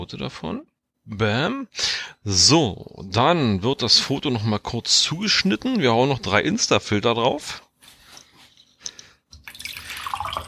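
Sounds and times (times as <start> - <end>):
speech: 0.0 - 7.6
tea pouring into a cup: 9.4 - 10.4.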